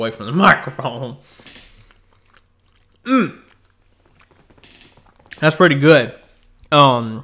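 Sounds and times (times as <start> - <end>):
speech: 0.0 - 1.6, 3.1 - 3.4, 5.4 - 7.2
person chewing peanuts: 1.2 - 5.6, 6.2 - 6.8
murmured vocal sound: 3.0 - 3.6.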